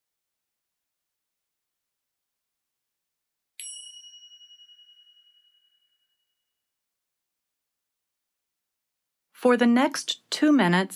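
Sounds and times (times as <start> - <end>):
meditation chime ringing: 3.6 - 6.6
speech: 9.4 - 10.9.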